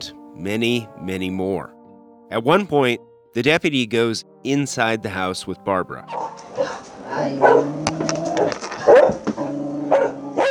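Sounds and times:
speech: 0.0 - 9.3
several dogs barking: 6.0 - 10.4.

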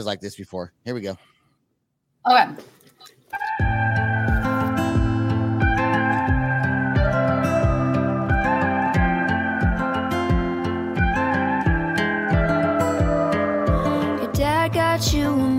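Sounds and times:
speech: 0.0 - 1.4, 2.2 - 3.9
instrumental country song intro with bass and guitar: 3.3 - 15.5.

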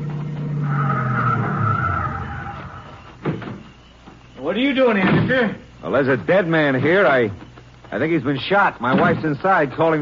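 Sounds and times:
car roaring up: 0.0 - 3.2
car tires squealing in a long skid: 0.0 - 3.2
speech: 4.5 - 9.9.

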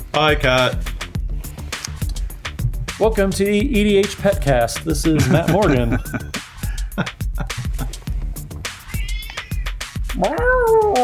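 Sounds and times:
speech: 0.2 - 0.9, 3.0 - 6.4, 7.0 - 7.6, 10.2 - 11.0
laughter: 5.0 - 8.0
cat meowing loudly: 8.8 - 11.0.

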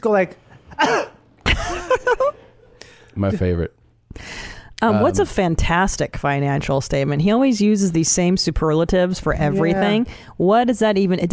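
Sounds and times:
speech: 0.0 - 1.1, 3.2 - 11.3
person clearing throat with rasping grunting hacks: 0.7 - 1.2.

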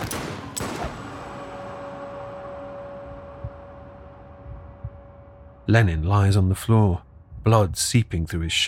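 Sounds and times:
gunshots: 0.0 - 1.4
low rumble: 0.1 - 8.5
speech: 5.7 - 8.6.

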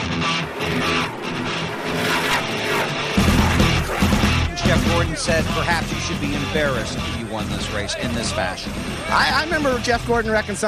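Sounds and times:
race car engine bouncing off the rev limiter at high revs: 0.1 - 5.0
speech: 5.1 - 10.6.

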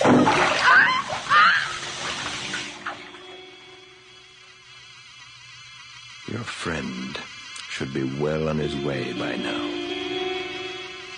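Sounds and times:
vigorous splashing and sloshing in bath water: 0.0 - 3.0
speech: 6.4 - 9.8.

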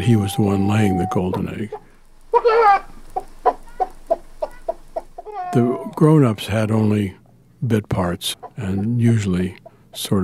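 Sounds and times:
human voice imitating chicken squawk and clucks: 0.0 - 1.5, 2.4 - 2.9, 5.2 - 6.0
speech: 0.0 - 1.8, 5.5 - 10.2.

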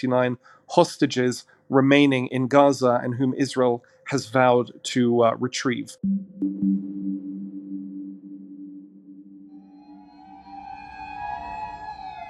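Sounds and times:
speech: 0.0 - 7.3
low steady siren drone: 6.0 - 12.2
emergency vehicle sirens wailing: 8.9 - 12.2.

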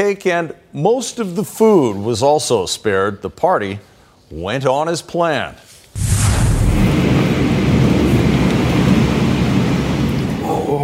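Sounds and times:
speech: 0.0 - 6.1
deep continuous rumble of thunder in a massive thunderstorm: 6.0 - 10.8
steady loud rain in a massive thunderstorm: 6.0 - 10.8.

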